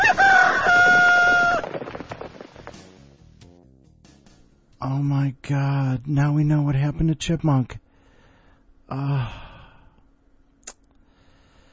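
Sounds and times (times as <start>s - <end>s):
loud drawn-out crowing call: 0.0s - 1.8s
speech: 5.3s - 7.8s, 8.9s - 9.4s.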